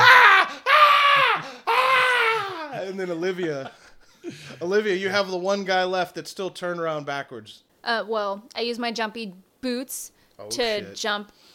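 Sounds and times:
voice imitating a man screaming in pain from spikes through his legs: 0.0s - 2.8s
speech: 3.0s - 11.5s.

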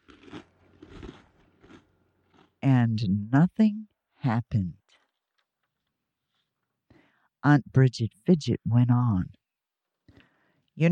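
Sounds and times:
crisp crunching bites while eating: 0.0s - 2.6s
speech: 2.6s - 4.8s, 7.4s - 9.4s, 10.8s - 10.9s.

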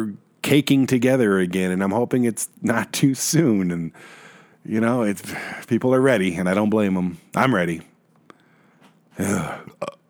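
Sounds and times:
speech: 0.0s - 7.9s, 9.2s - 10.0s
brief soft mouth or breath sounds: 8.3s - 10.0s
single loud burp: 9.2s - 10.0s.

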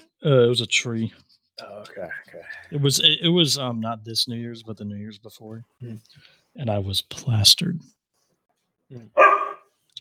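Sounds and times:
speech: 0.2s - 8.0s, 8.9s - 9.4s
dog giving a gruff bark: 9.2s - 9.7s.

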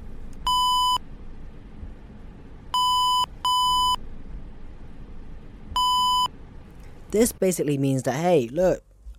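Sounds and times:
low steady rumble: 0.0s - 9.1s
vehicle speed warning electronic beeps: 0.5s - 1.0s, 2.8s - 4.0s, 5.8s - 6.3s
speech: 7.1s - 8.9s.

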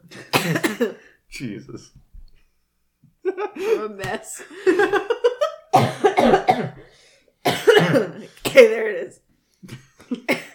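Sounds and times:
woman coughing in harsh raspy bursts: 0.2s - 1.0s, 5.7s - 6.9s, 7.5s - 8.9s, 10.2s - 10.5s
speech: 0.4s - 2.1s, 3.5s - 5.2s, 7.8s - 10.4s.

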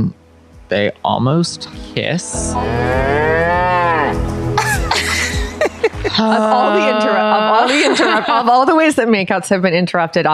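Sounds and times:
speech: 0.0s - 4.4s, 6.0s - 10.3s
cow mooing: 2.5s - 4.3s
laughter: 4.6s - 8.9s.

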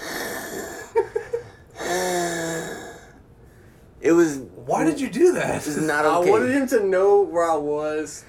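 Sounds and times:
man imitating asthmatic wheezing breathing: 0.0s - 3.2s
speech: 4.1s - 8.2s.

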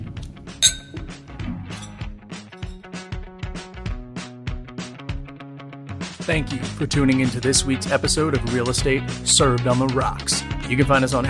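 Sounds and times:
steady rhythmic music: 0.0s - 11.2s
glasses clinking in a toast: 0.6s - 2.8s
speech: 6.3s - 11.2s.

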